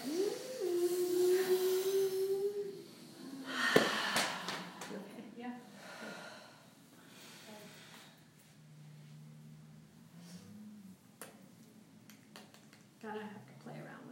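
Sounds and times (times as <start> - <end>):
long wheezy voiced tone in a breathing exercise: 0.0 - 3.5
breathy exhales: 0.0 - 8.3.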